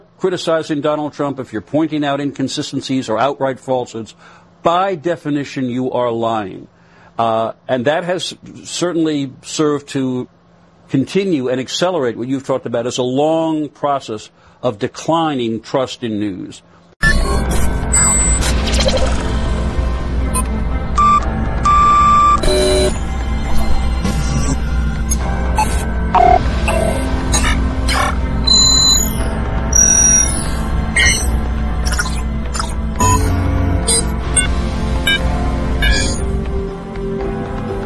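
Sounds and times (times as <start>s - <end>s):
speech: 0.2s - 16.8s
high beeping blips and tonal chirps: 17.0s - 19.2s, 20.3s - 36.3s
dense rumbling low drone: 17.3s - 37.7s
electronic show bumper jingle: 20.3s - 36.4s.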